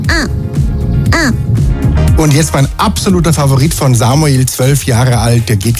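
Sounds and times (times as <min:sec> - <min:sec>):
12-year-old boy imitating fish crow caws: 0:00.1 - 0:00.4, 0:01.1 - 0:01.4
speech: 0:02.2 - 0:05.7.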